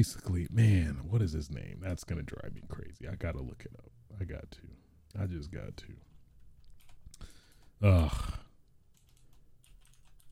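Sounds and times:
speech: 0.0 - 6.1, 7.2 - 8.4
rapid typing on a computer keyboard: 6.7 - 7.7, 8.9 - 10.2.

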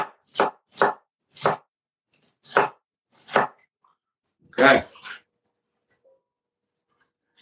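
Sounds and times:
knife slicing stacked pieces of a seeded vegetable on a cutting board: 0.0 - 1.7, 2.3 - 3.7
speech: 4.6 - 4.9.

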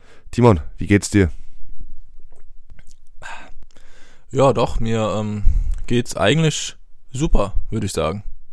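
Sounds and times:
faint hissy breath: 0.0 - 0.3, 3.2 - 4.3, 5.4 - 5.9
speech: 0.4 - 1.4, 4.3 - 8.3
soft wet mouth clicks: 2.2 - 3.8.

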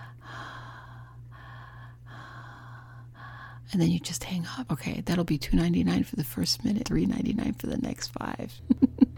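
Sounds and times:
person heavy breathing in slow rhythmic breaths: 0.0 - 3.7
speech: 3.7 - 8.9.

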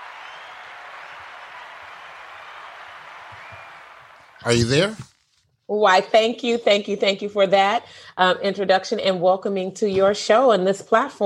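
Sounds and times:
applause from a group of people: 0.0 - 4.9
speech: 4.4 - 5.1, 5.7 - 11.2.

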